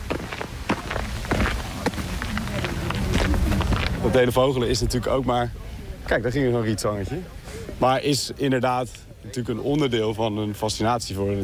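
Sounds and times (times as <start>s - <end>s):
footsteps of someone walking outdoors in nature: 0.0s - 4.3s
speech: 4.0s - 11.4s.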